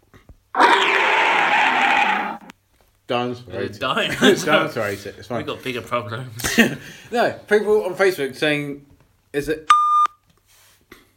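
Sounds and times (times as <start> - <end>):
dog growling: 0.6 - 2.5
speech: 3.1 - 9.8.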